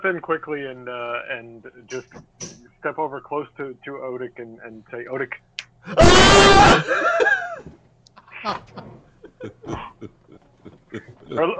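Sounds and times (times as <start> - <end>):
speech: 0.0 - 7.3, 8.4 - 10.2, 10.9 - 11.5
person letting out a loud shrill scream: 5.9 - 6.9
laughter: 5.9 - 11.5.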